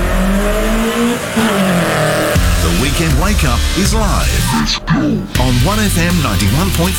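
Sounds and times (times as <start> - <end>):
race car engine revving loudly with throaty whine: 0.0 - 6.9
speech: 3.0 - 6.9.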